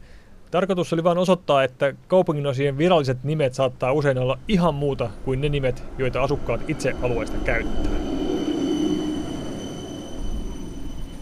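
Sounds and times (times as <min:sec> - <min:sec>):
speech: 0:00.5 - 0:08.1
tram wheels rumbling on rails: 0:04.4 - 0:11.2
high electrical whine of a tram: 0:04.5 - 0:11.2.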